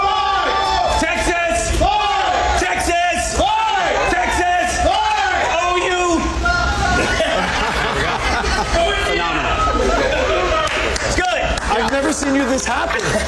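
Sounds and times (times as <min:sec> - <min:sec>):
large crowd at a state fair shouting and whooping in unison: 0:00.0 - 0:13.2
scattered chatter and laughter: 0:03.9 - 0:13.2
speech: 0:12.2 - 0:13.2.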